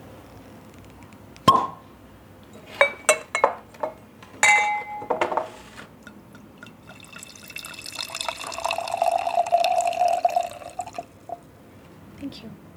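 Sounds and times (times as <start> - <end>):
glass clinking as a wine bottle is opened on a balcony: 2.8 - 11.4
wine pouring into a glass: 6.1 - 11.4.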